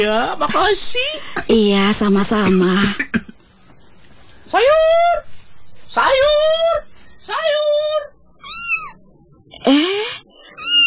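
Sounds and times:
speech: 0.0 - 3.2, 4.5 - 5.3, 5.9 - 8.1, 9.6 - 10.3
cat meowing: 7.6 - 9.0, 10.5 - 10.8.

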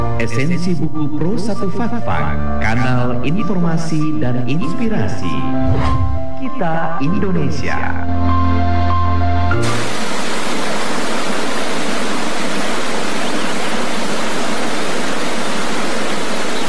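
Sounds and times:
speech: 0.2 - 8.7
water rushing in a stream or waterfall: 9.6 - 16.6.

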